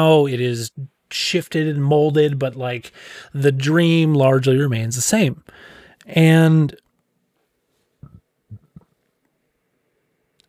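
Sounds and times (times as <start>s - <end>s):
speech: 0.0s - 6.8s
low burps: 8.0s - 8.9s.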